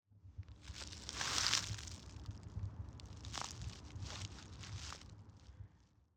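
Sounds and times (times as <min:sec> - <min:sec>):
step on dry leaves: 0:00.7 - 0:02.1, 0:03.1 - 0:05.1.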